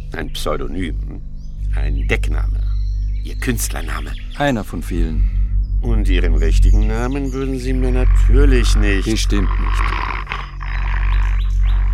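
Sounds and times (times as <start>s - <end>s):
speech: 0.2s - 2.6s, 3.2s - 10.5s
muzzled dog growling aggressively: 7.6s - 11.9s.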